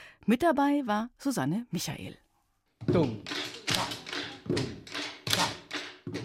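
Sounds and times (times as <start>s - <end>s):
speech: 0.2s - 2.2s, 2.9s - 3.8s
schoolchildren drumming with pens on a hard surface in a classroom: 2.8s - 6.2s.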